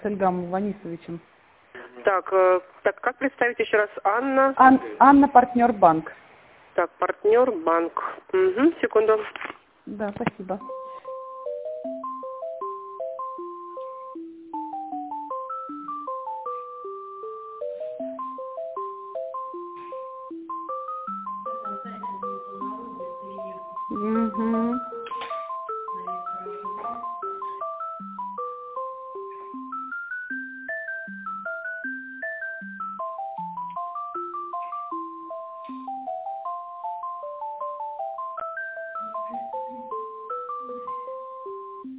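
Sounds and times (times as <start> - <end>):
speech: 0.0 - 1.4, 2.0 - 10.8
electronic telephone ringing tone over a phone line during call transfer: 10.6 - 41.9.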